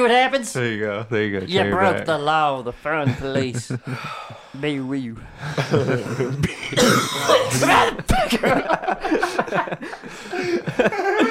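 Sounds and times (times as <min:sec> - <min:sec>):
speech: 0:00.0 - 0:11.2
laughter: 0:03.0 - 0:04.3, 0:05.3 - 0:11.2
man coughing: 0:05.9 - 0:08.8.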